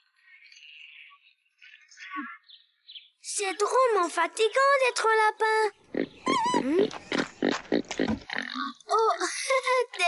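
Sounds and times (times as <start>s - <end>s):
speech: 2.2s - 2.4s, 3.4s - 6.0s, 6.6s - 7.1s, 9.0s - 10.0s
pig oinking and squealing: 5.9s - 8.8s.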